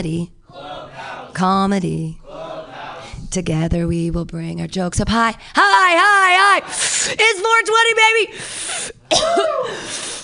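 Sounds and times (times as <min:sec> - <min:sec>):
speech: 0:00.0 - 0:00.7, 0:01.3 - 0:02.2, 0:03.3 - 0:10.1
person coughing after vaping: 0:09.1 - 0:09.8.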